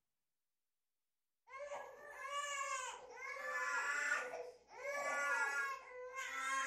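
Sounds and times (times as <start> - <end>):
twin young children crying loudly: 1.6 - 6.6.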